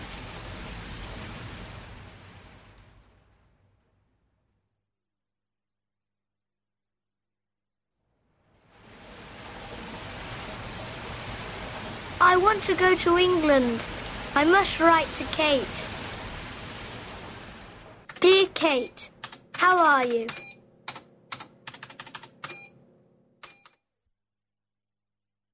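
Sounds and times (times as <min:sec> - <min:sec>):
steady dense rain falling: 0:00.0 - 0:03.6, 0:08.4 - 0:20.3
speech: 0:12.2 - 0:15.9, 0:18.2 - 0:20.4.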